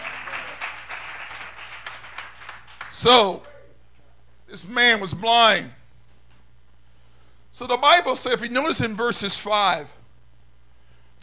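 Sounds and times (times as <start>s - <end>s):
audience applause: 0.0s - 2.9s
speech: 3.0s - 3.5s, 4.5s - 5.8s, 7.6s - 10.0s.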